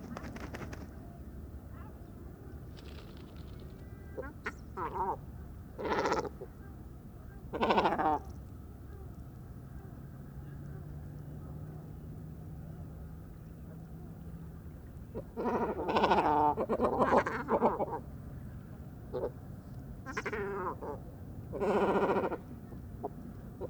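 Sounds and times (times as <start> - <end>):
faint low drone of cars: 0.0 - 23.6
great cormorant raspy croaks at a roost on fishermen's stakes at dusk: 5.8 - 6.5, 7.5 - 8.3, 15.2 - 18.1, 20.0 - 23.6.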